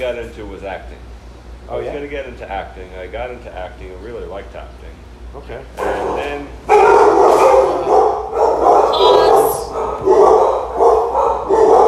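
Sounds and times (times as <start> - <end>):
speech: 0.0 - 6.7
several dogs barking and yipping: 5.8 - 11.8.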